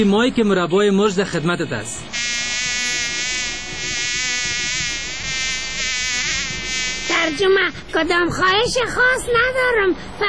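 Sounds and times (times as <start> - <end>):
speech: 0.0 - 2.2, 7.3 - 10.2
fly buzzing: 2.1 - 7.8.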